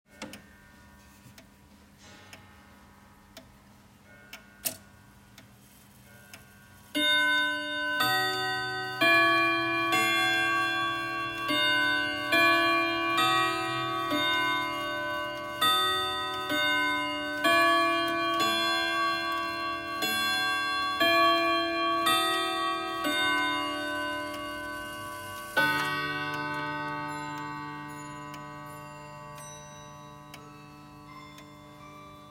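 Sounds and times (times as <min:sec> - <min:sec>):
grandfather clock: 0:00.1 - 0:32.3.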